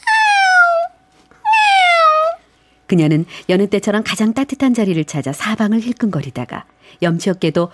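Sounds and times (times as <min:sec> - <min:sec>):
cat meowing entering a barn: 0:00.0 - 0:02.4
speech: 0:02.9 - 0:07.7.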